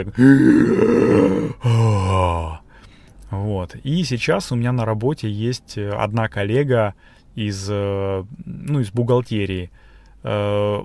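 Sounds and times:
speech: 0.0s - 2.6s, 3.3s - 10.8s
person exhaling loudly in relief after holding breath: 0.2s - 2.5s.

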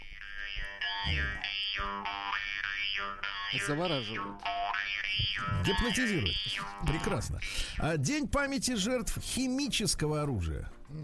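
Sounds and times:
khomus Yakut jaw harp twanging with a buzzing drone: 0.0s - 7.4s
speech: 1.0s - 2.4s, 3.0s - 4.5s, 5.2s - 11.0s.

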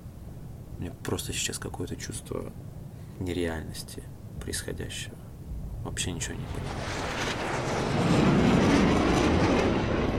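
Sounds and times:
speech: 0.8s - 5.2s, 5.8s - 8.3s
fighter jets flying low overhead: 6.2s - 10.1s.

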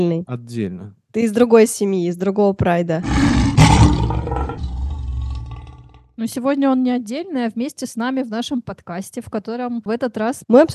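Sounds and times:
speech: 0.0s - 4.4s, 6.2s - 10.7s
person imitating a lion's roar with a gravelly growl: 3.0s - 6.0s.

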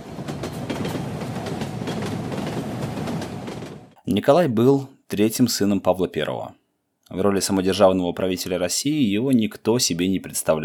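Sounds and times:
train rolling along the track: 0.0s - 4.0s
train wheels clacking over rail joints: 0.0s - 4.0s
speech: 4.1s - 10.6s.

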